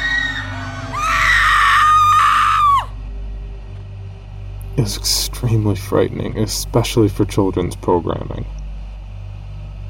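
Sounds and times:
person screaming behind a rusted door: 0:00.0 - 0:03.0
low steady rumble: 0:00.0 - 0:09.8
speech: 0:04.8 - 0:08.6.

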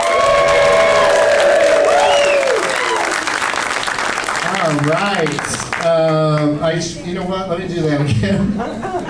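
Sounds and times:
sustained whooping cheer: 0:00.0 - 0:03.4
crowd applause: 0:00.0 - 0:05.9
speech: 0:04.9 - 0:09.0.

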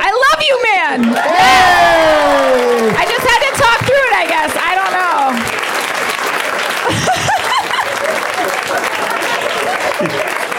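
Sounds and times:
live audience cheering and applauding: 0:01.0 - 0:10.5
scattered whoops and shouted voices: 0:01.1 - 0:03.1
laughter: 0:06.6 - 0:10.5.

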